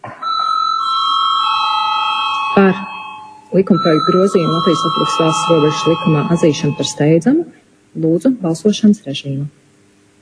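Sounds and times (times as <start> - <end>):
electric bell ringing to call a vote in the Latvian parliament: 0.2 - 7.3
speech: 3.6 - 9.6.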